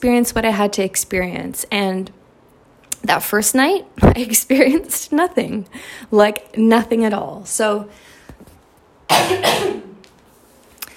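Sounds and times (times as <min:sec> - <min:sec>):
speech: 0:00.0 - 0:02.2, 0:03.0 - 0:08.1, 0:09.1 - 0:09.8
person coughing loudly: 0:09.1 - 0:10.0.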